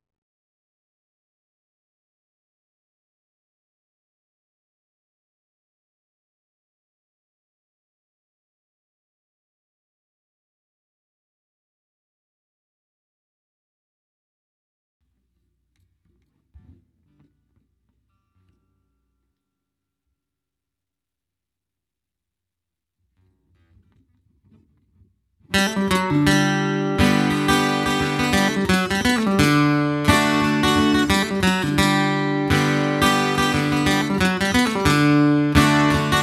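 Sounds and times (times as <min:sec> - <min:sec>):
12 string guitar: 0:15.7 - 0:19.6, 0:23.2 - 0:36.2.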